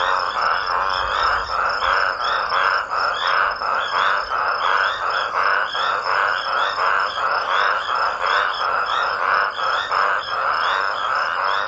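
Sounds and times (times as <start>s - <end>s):
chorus of several raucous toads croaking: 0.0s - 11.6s.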